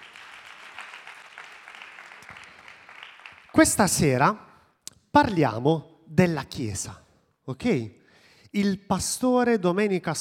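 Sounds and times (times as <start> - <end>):
congregation clapping at a Sunday church gathering: 0.0 - 3.9
speech: 3.6 - 4.5, 5.2 - 10.1.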